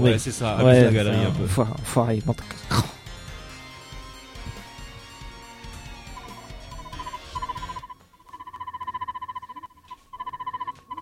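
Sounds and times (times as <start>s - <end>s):
speech: 0.0s - 2.9s
mobile phone ringing with electronic trill: 6.1s - 11.0s.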